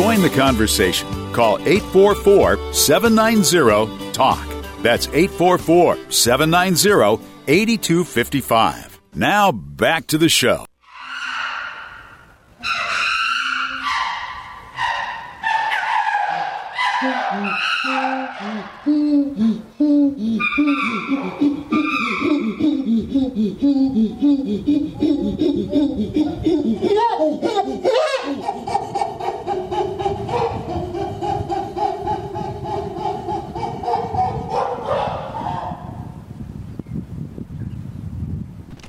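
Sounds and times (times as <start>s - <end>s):
speech: 0.2s - 10.7s, 17.0s - 22.6s, 23.4s - 28.9s
group of chimpanzees hooting and barking: 10.8s - 36.0s.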